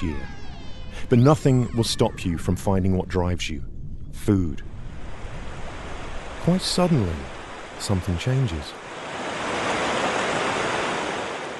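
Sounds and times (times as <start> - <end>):
speech: 0.0 - 0.4, 1.0 - 4.7, 6.4 - 8.8
ocean surf: 4.7 - 11.5.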